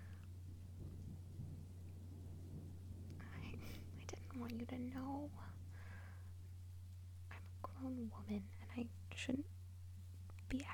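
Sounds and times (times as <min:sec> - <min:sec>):
thunder rumbling during a little storm: 0:00.0 - 0:06.7
rain hissing during a little storm: 0:00.0 - 0:07.3
speech: 0:04.4 - 0:05.6, 0:07.8 - 0:09.6, 0:10.5 - 0:10.7.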